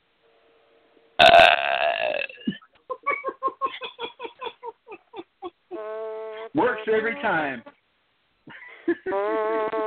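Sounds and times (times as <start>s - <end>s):
loud belch with croaking gulps: 1.2s - 2.6s
speech: 6.6s - 7.7s, 9.0s - 9.7s.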